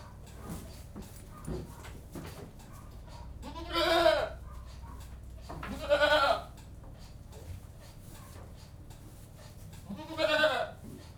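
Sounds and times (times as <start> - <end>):
goat bleating inside a goat house: 3.4 - 4.4, 5.7 - 6.5, 9.9 - 10.8.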